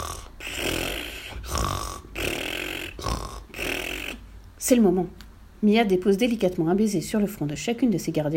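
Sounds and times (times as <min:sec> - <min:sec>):
woman snoring loudly in bed: 0:00.0 - 0:04.3
speech: 0:04.6 - 0:08.3.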